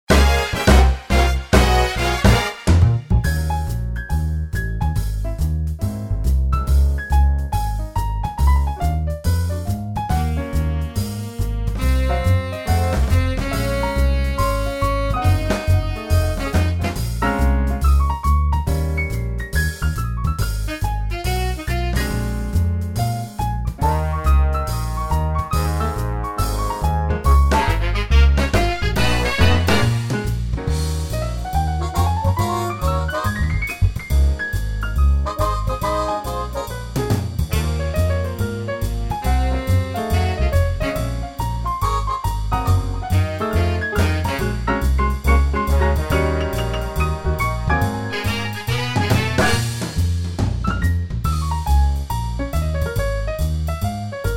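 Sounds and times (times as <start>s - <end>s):
big band swing music: 0.0s - 54.3s.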